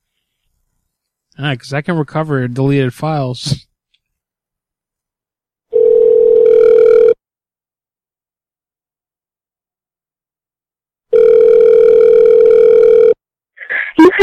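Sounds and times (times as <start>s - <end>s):
speech: 1.4s - 3.7s
electronic phone line ringback tones: 5.7s - 7.2s, 11.1s - 13.2s.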